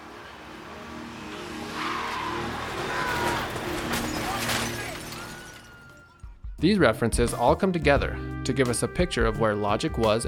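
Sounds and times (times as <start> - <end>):
car engine drone: 0.0 - 4.0
car roaring by: 0.0 - 4.7
car tires screeching: 0.0 - 6.0
speech: 6.6 - 10.2.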